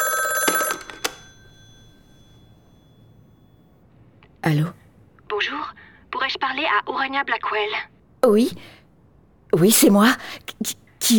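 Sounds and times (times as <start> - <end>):
telephone bell ringing with a metallic jangle: 0.0 - 3.8
speech: 6.6 - 8.8, 9.5 - 11.1.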